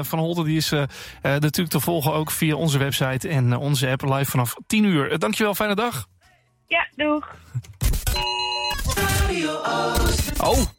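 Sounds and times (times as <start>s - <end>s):
speech: 0.0s - 6.1s, 6.7s - 10.7s
emergency alarm jingle with bright sustained electronic tones: 8.1s - 8.9s.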